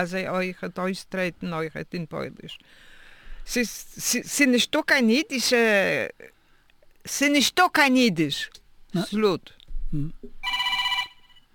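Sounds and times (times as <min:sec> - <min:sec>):
speech: 0:00.0 - 0:06.4, 0:07.0 - 0:10.4
telephone ringing in a studio: 0:10.4 - 0:11.5.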